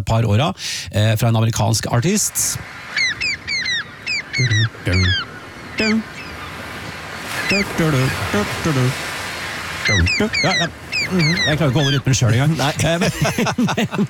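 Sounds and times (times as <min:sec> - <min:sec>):
speech: 0:00.0 - 0:03.2, 0:04.4 - 0:06.1, 0:07.5 - 0:09.1, 0:09.9 - 0:14.0
faint noise: 0:00.0 - 0:14.0
small group of seagulls squawking: 0:02.6 - 0:14.0
laughter: 0:11.2 - 0:14.0.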